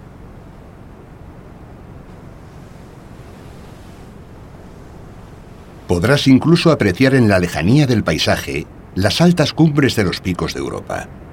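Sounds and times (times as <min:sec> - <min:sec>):
wind rushing past: 0:00.0 - 0:09.0
sea waves breaking below a cliff at Yastres on the Asturian coast: 0:00.0 - 0:11.3
speech: 0:05.9 - 0:11.3.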